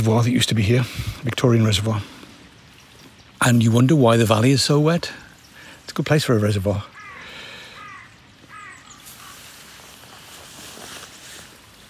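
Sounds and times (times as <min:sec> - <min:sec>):
speech: 0:00.0 - 0:02.2, 0:03.4 - 0:05.2, 0:05.9 - 0:06.9
rushing outdoor background of wind or water: 0:00.0 - 0:11.8
raven croaking: 0:06.6 - 0:09.5.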